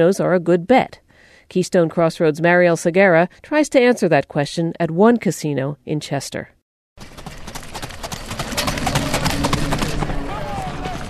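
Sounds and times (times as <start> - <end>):
speech: 0.0 - 7.1
racehorses galloping on a racetrack: 7.0 - 11.0.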